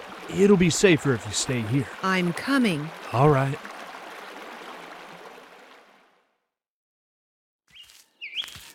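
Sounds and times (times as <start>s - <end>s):
creek water rushing after high water: 0.0s - 6.2s
speech: 0.3s - 3.7s
sharp bright bird chirps: 7.7s - 8.7s.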